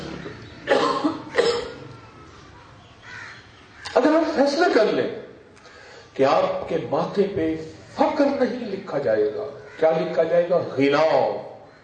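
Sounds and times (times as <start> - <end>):
man who is feeling unwell coughing: 0.7 - 1.8
speech: 4.2 - 5.2, 6.2 - 11.5.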